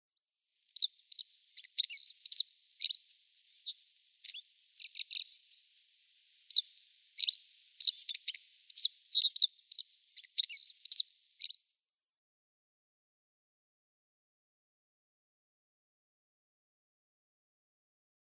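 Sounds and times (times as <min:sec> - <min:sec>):
Red-headed Bunting calls: 0:00.7 - 0:11.6.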